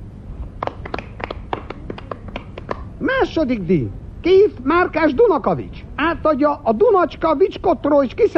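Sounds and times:
low rumble: 0.0 - 8.3
sparse scattered handclapping from a few people in an audience: 0.6 - 2.9
speech: 3.0 - 8.3.

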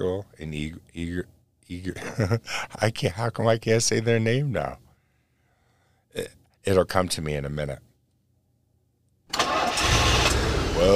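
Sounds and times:
speech: 0.0 - 4.8, 6.1 - 7.9
car engine cranking and starting: 9.3 - 10.9.

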